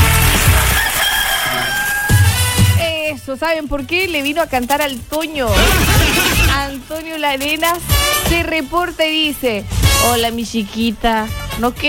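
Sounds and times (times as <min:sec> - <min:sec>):
rooster crowing: 0:00.6 - 0:02.6
speech: 0:03.3 - 0:11.8.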